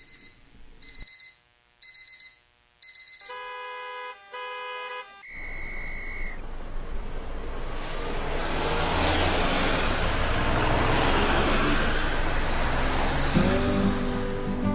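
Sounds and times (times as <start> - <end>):
alarm clock beeping: 0.0 - 4.2
broad rushing noise: 7.1 - 14.6.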